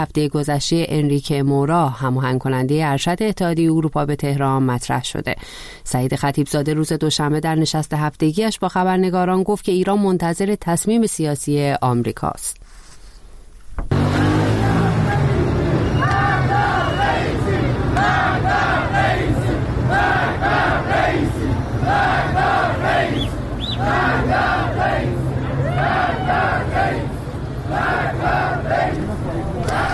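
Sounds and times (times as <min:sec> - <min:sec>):
speech: 0:00.0 - 0:12.6
crowd chanting at a protest in Iran: 0:13.9 - 0:29.9.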